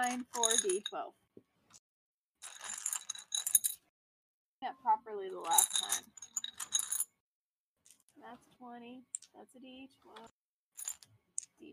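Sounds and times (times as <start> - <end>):
pile of dice being rummaged through: 0.0 - 1.0, 2.4 - 3.8, 5.4 - 7.0, 10.2 - 11.6
speech: 0.1 - 1.2, 4.6 - 6.2, 8.2 - 10.4.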